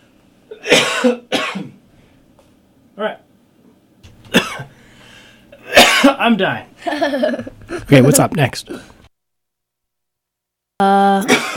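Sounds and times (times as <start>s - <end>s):
quiet room noise: 0.0s - 11.5s
person coughing harshly: 0.5s - 1.8s, 4.3s - 4.7s, 5.6s - 6.2s, 11.2s - 11.5s
speech: 1.0s - 1.6s, 3.0s - 3.2s, 6.2s - 9.0s, 10.8s - 11.4s.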